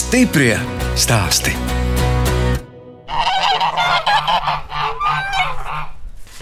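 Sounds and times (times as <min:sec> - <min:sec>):
speech: 0:00.1 - 0:01.7
flock of farmyard geese honking: 0:03.1 - 0:06.1.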